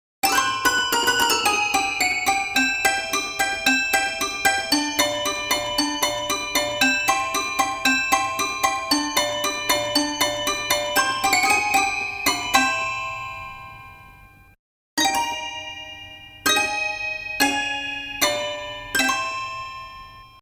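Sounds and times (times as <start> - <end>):
toy piano: 0.2 - 20.4.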